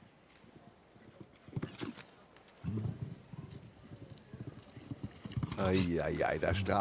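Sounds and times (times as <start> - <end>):
horse hooves galloping: 1.0 - 6.7
speech: 5.6 - 6.7.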